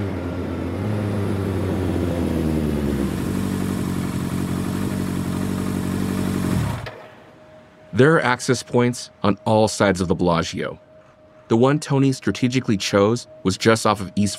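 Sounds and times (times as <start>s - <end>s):
motorcycle engine rumbling, revving and idling: 0.0s - 9.0s
speech: 8.0s - 10.8s, 11.5s - 14.3s.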